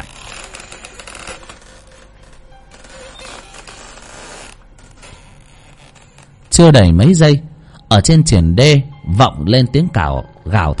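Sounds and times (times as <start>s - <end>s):
door slowly creaking open with raspy ratchety creak: 0.0s - 6.6s
speech: 6.6s - 10.7s.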